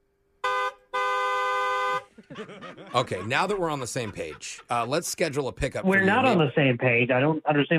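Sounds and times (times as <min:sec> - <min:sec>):
car horn honking: 0:00.4 - 0:02.2, 0:03.1 - 0:04.1
laughter: 0:02.1 - 0:06.4
speech: 0:02.3 - 0:07.7.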